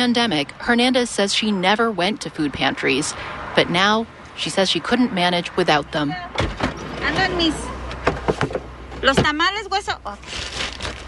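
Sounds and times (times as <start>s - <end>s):
speech: 0.0s - 7.7s, 8.4s - 10.8s
car pulling up: 6.3s - 9.5s
car power window whirring down: 6.6s - 8.1s.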